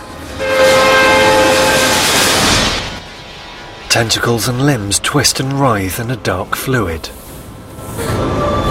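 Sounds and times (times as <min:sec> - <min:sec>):
freight train wheels rumbling on track: 0:00.0 - 0:08.6
sustained horn-like tone: 0:00.3 - 0:03.8
speech: 0:04.0 - 0:07.2.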